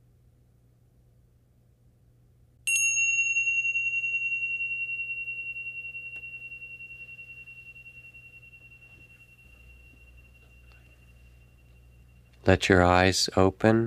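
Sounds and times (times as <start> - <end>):
faint low hum: 0.0 - 13.8
meditation bell ringing: 2.7 - 13.0
speech: 12.4 - 13.8.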